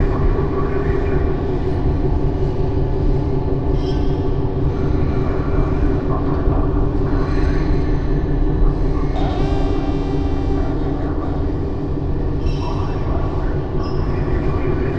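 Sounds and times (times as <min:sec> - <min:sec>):
spaceship ambience in space surround: 0:00.0 - 0:14.9.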